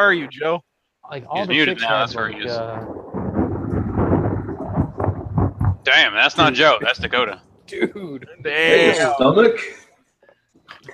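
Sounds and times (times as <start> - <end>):
speech: 0.0 - 3.1, 5.8 - 9.8
steady rain: 1.3 - 9.7
thunder from a bright lightning strike rumbling: 1.4 - 9.2.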